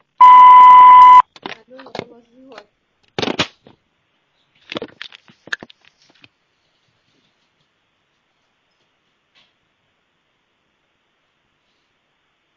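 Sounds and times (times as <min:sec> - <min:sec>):
answering machine beep: 0:00.2 - 0:01.2.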